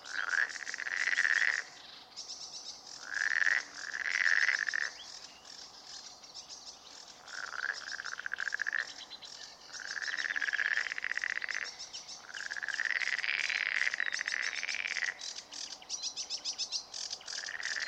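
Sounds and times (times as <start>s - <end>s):
marsh frog giving rattling croak bursts: 0.0s - 2.0s, 2.9s - 6.1s, 6.9s - 17.8s.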